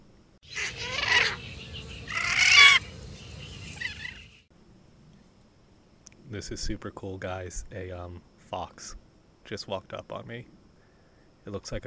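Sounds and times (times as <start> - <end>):
steady low hiss: 0.0 - 11.8
magnificent frigatebird chicks making begging calls while being fed: 0.5 - 4.5
speech: 6.3 - 10.6, 11.4 - 11.8.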